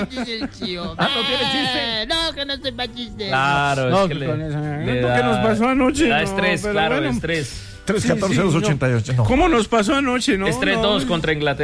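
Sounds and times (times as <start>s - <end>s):
laughter: 0.0s - 2.1s
speech: 0.0s - 11.6s
goat bleating: 1.0s - 1.8s.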